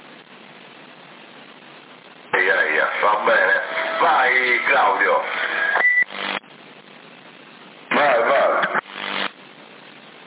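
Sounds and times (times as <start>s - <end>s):
CB radio hiss: 0.0s - 10.2s
speech: 3.0s - 5.4s
electronic call tone beeps over a CB radio: 5.8s - 6.1s.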